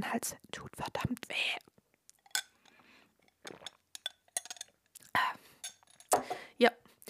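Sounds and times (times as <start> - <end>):
speech: 0.0 - 1.6, 6.6 - 6.8
glass clinking: 2.2 - 2.7, 3.3 - 4.8, 5.6 - 6.3
sipping and swallowing the last water in a glass: 3.3 - 4.1.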